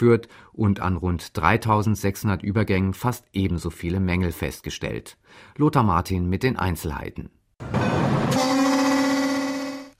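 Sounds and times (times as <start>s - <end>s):
speech: 0.0s - 8.6s
train warning horn in the Czech Republic: 8.3s - 9.9s.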